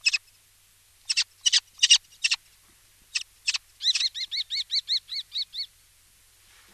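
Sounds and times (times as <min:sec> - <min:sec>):
common kestrel kee calls and rasping notes: 0:00.0 - 0:00.3, 0:01.0 - 0:02.4, 0:03.1 - 0:05.8.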